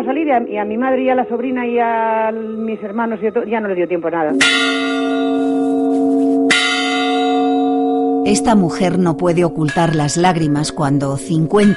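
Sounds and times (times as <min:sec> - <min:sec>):
speech: 0:00.0 - 0:06.7, 0:08.2 - 0:11.7
deep church bell tolling a death knell: 0:04.3 - 0:11.7.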